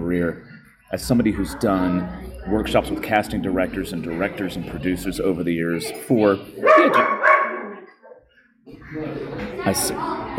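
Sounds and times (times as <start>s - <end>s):
noise: 0.0s - 10.3s
speech: 0.1s - 7.2s, 8.9s - 10.3s
dog barking: 6.6s - 8.2s.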